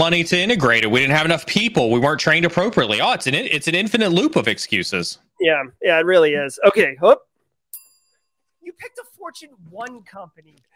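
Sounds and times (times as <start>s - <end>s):
speech: 0.0s - 7.3s, 8.7s - 10.7s
single bright bell chime: 7.8s - 8.6s.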